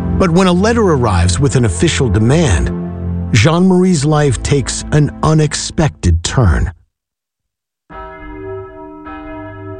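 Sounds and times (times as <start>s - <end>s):
speech: 0.2s - 6.8s
school bell ringing at a boys' school: 7.9s - 9.7s.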